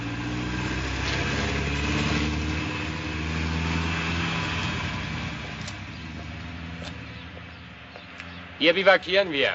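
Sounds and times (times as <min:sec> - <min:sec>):
heavy truck engine rumbling: 0:00.0 - 0:09.5
speech: 0:08.6 - 0:09.5.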